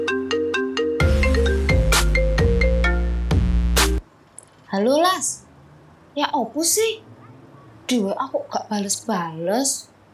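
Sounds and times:
mobile phone ringtone for an incoming call: 0.0s - 3.4s
speech: 4.7s - 5.4s, 6.2s - 7.1s, 7.9s - 9.9s.

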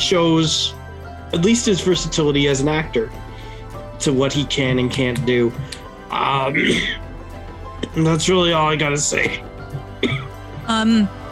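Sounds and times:
speech: 0.0s - 3.2s, 4.0s - 7.0s, 7.9s - 11.2s
person coughing hard: 6.5s - 7.0s, 9.2s - 10.4s.

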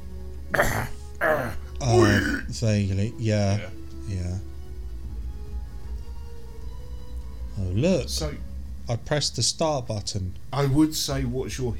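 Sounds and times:
faint hum: 0.0s - 11.7s
person imitating video game character coughing and wheezing: 0.5s - 2.5s
speech: 2.6s - 4.5s, 7.8s - 11.7s.

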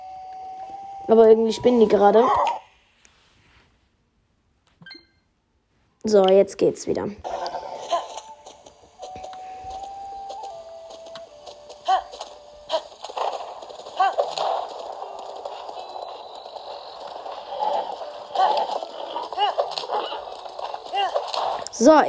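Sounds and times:
sustained tones and ambient game sound: 0.0s - 22.0s
speech: 1.1s - 2.6s, 6.1s - 7.4s, 21.9s - 22.0s
video game horse hoofbeats at a riding pace: 7.3s - 22.0s.

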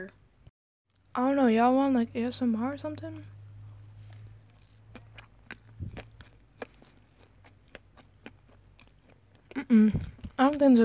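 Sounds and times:
speech: 0.0s - 0.2s, 1.2s - 3.4s, 9.7s - 10.8s
low steady hum: 0.0s - 10.8s
person chewing cupcakes with mouth full: 3.2s - 10.7s.

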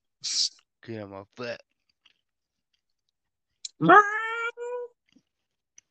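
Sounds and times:
speech: 0.2s - 1.7s, 3.8s - 4.2s
cat meowing: 3.8s - 4.9s.

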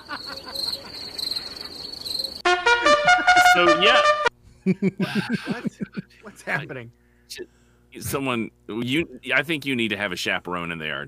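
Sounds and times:
laughter: 0.0s - 1.1s, 2.8s - 3.8s, 4.6s - 6.8s
crickets chirping: 0.0s - 2.5s
loud tonal burst: 2.4s - 4.3s
speech: 3.6s - 11.0s.

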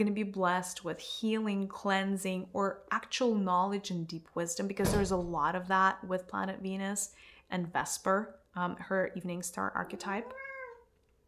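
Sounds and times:
speech: 0.0s - 10.4s
cat meowing: 10.0s - 10.9s.

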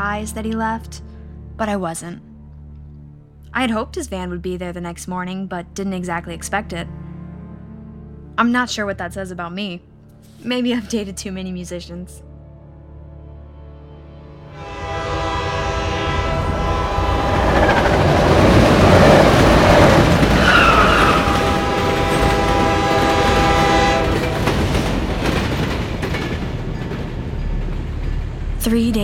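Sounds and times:
speech: 0.0s - 2.3s, 3.5s - 7.0s, 8.4s - 12.3s, 28.6s - 29.0s
train horn blaring: 14.3s - 25.2s
train rumbling along rails: 14.6s - 29.0s.

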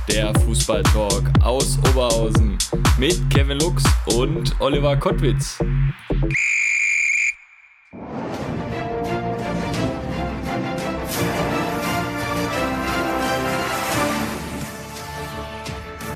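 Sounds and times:
energetic music: 0.0s - 6.4s, 8.4s - 16.1s
speech: 0.0s - 6.8s
shrill whistle blast blown as a starting signal: 6.3s - 8.0s.

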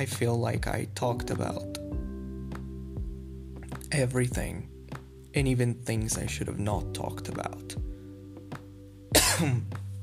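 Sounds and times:
speech: 0.0s - 1.8s, 3.9s - 4.7s, 5.3s - 7.9s, 9.4s - 9.8s
person coughing: 9.1s - 9.7s
raspy throat clearing: 9.2s - 9.7s.

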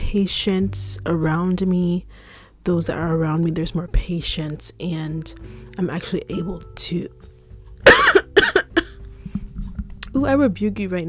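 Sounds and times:
speech: 0.1s - 7.2s, 10.2s - 11.0s
person coughing: 7.9s - 8.9s.

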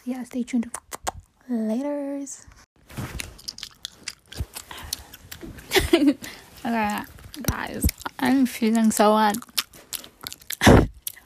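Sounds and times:
speech: 0.1s - 0.9s, 1.5s - 2.6s, 5.9s - 9.5s
smacking mouth noises: 0.6s - 1.4s, 3.2s - 11.2s
wet chewing of gum: 0.6s - 1.4s, 3.0s - 11.2s.

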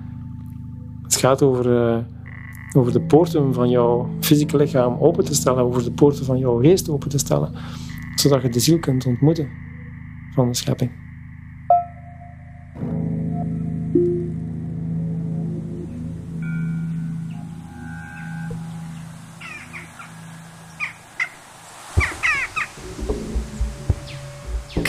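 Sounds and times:
low steady drone: 0.0s - 24.8s
speech: 1.2s - 2.2s, 2.8s - 9.7s, 10.4s - 11.0s
crow cawing: 2.2s - 2.8s, 7.6s - 8.9s, 17.8s - 24.8s.

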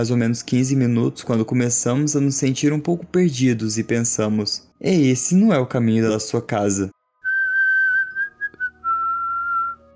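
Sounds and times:
speech: 0.0s - 7.0s
loud sustained human whistle to get attention: 7.2s - 9.8s.

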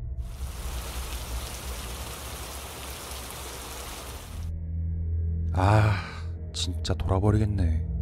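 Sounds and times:
rain falling: 0.2s - 4.5s
speech: 5.6s - 6.0s, 6.6s - 7.9s.

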